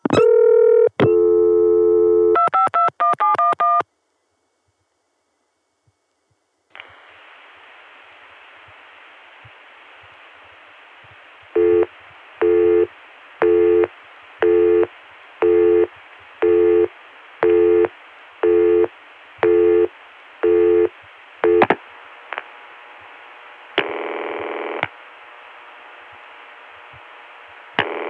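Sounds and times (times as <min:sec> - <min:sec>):
telephone PBX busy signal over a phone line: 0:00.1 - 0:03.8, 0:11.6 - 0:21.6.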